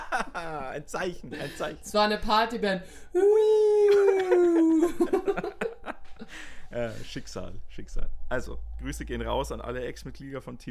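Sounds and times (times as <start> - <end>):
laughter: 0.0 - 1.4, 3.9 - 6.4
speech: 0.4 - 5.6, 6.3 - 10.6
person imitating a siren with a wailing tone: 3.2 - 5.0.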